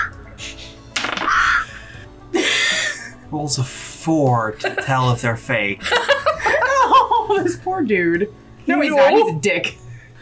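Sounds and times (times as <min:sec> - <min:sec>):
crows cawing: 0:01.0 - 0:02.0
speech: 0:03.3 - 0:06.1, 0:07.3 - 0:09.8
laughter: 0:05.8 - 0:07.6.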